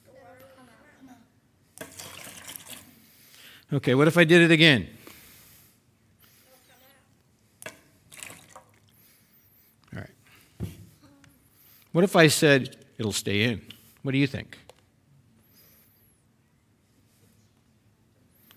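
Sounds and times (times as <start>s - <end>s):
water sloshing in an upturned water bottle: 1.8s - 2.9s, 7.6s - 9.0s
speech: 3.7s - 5.0s, 12.0s - 14.6s.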